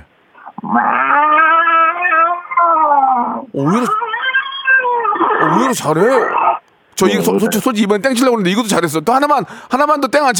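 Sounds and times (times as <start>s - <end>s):
person imitating an angry cat yowling: 0.6s - 7.6s
speech: 0.7s - 1.1s, 3.5s - 4.0s, 5.6s - 6.4s, 7.0s - 10.3s.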